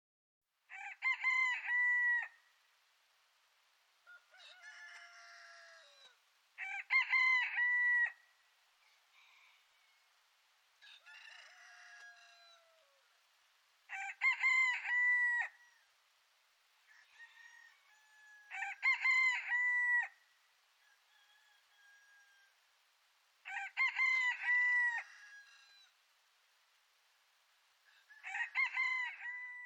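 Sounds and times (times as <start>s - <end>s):
rooster: 0.7s - 2.5s, 4.0s - 13.2s, 13.9s - 16.0s, 16.8s - 22.7s, 23.4s - 26.0s, 27.8s - 29.6s.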